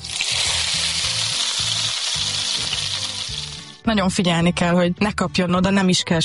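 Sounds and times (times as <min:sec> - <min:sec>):
dumplings frying in olive oil in a pan: 0:00.0 - 0:03.8
speech: 0:03.9 - 0:06.2.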